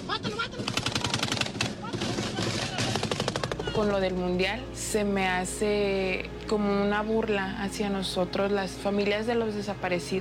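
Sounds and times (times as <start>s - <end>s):
rapid bursts of automatic gunfire: 0.6s - 3.8s
speech: 3.8s - 10.1s.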